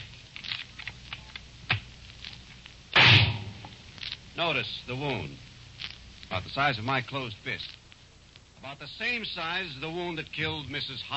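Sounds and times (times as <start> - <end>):
shotgun fired from eight feet: 3.0 - 3.6
speech: 4.4 - 5.5, 6.3 - 7.8, 8.6 - 11.1.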